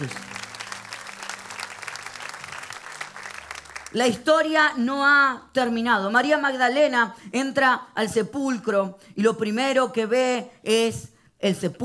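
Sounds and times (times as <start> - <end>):
speech: 0.0 - 0.3, 3.9 - 11.8
audience applauding: 0.0 - 4.2.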